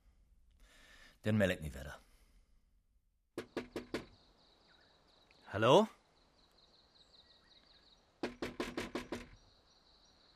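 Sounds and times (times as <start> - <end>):
speech: 1.2 - 2.1, 5.5 - 6.0
knocking on a door: 3.4 - 4.2, 8.2 - 9.4.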